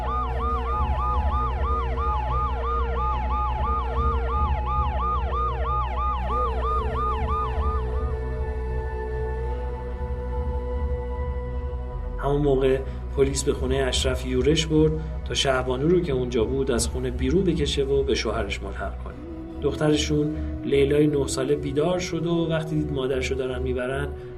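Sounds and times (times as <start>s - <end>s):
ambulance siren wailing: 0.0s - 12.2s, 18.1s - 24.3s
speech: 12.4s - 24.3s.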